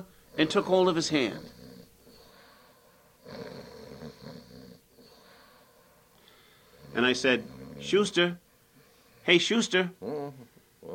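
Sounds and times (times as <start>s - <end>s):
speech: 0.0s - 1.6s, 7.0s - 8.4s, 9.3s - 10.9s
man snoring while lying asleep on a bed: 0.4s - 5.7s, 6.3s - 8.2s.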